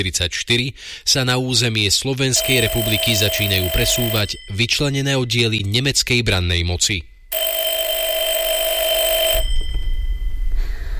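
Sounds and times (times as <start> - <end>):
speech: 0.0 - 7.4
telephone ringing: 2.4 - 4.9, 7.3 - 10.5.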